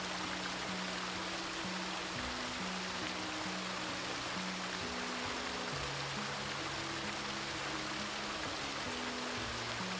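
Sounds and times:
soft slow music with held low notes: 0.0s - 9.9s
winding stream rushing: 0.0s - 9.9s.

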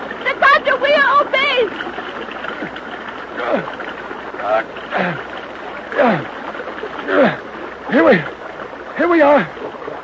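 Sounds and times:
splashing through stream water: 0.0s - 10.0s.

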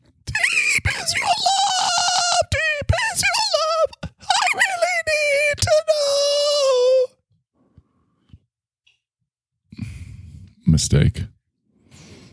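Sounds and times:
man singing in strained high-pitched falsetto: 0.3s - 7.1s
speech: 10.8s - 11.4s.

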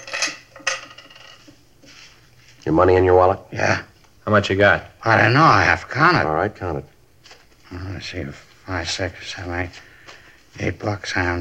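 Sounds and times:
keys and coins from pockets clinking on a hard table: 0.0s - 1.5s
speech: 2.6s - 6.9s, 7.7s - 9.9s, 10.6s - 11.4s.

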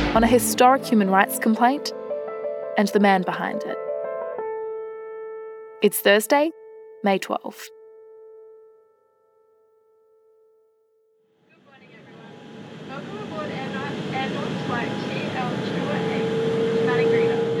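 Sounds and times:
speech: 0.1s - 2.0s, 2.7s - 3.9s, 5.8s - 7.7s
faint high whine: 11.5s - 17.5s
small twin-engine plane propeller engines droning in cabin: 11.5s - 17.5s
steady hum: 11.6s - 17.5s.

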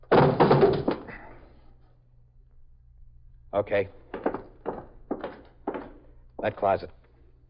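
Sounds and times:
door being kicked open: 0.0s - 1.1s
speech: 3.6s - 4.0s, 6.4s - 7.0s.

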